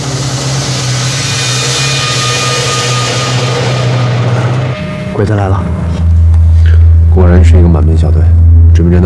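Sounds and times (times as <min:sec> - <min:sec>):
heavy military truck engines droning: 0:00.0 - 0:08.9
speech: 0:05.2 - 0:05.8, 0:07.2 - 0:09.0.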